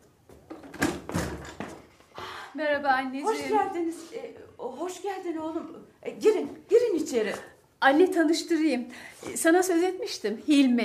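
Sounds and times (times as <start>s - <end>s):
door being opened with clunks and rattling knocks: 0.5s - 1.9s
speech: 2.6s - 10.8s.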